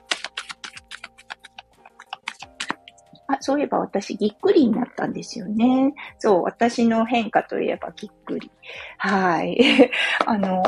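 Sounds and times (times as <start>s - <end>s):
tarot cards being shuffled by hand: 0.0s - 3.0s
speech: 3.3s - 10.6s.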